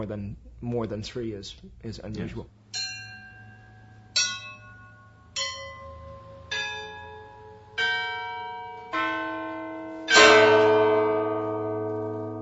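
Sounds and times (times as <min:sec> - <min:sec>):
speech: 0:00.0 - 0:02.6
Orthodox church bells ringing: 0:02.7 - 0:12.4.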